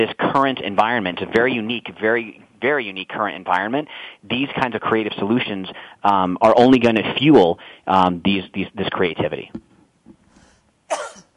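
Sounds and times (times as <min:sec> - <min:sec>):
speech: 0:00.0 - 0:09.7
quiet breathing: 0:03.9 - 0:04.3, 0:05.7 - 0:06.1, 0:07.6 - 0:07.9, 0:10.2 - 0:10.7
sharp raspy cough: 0:10.9 - 0:11.3.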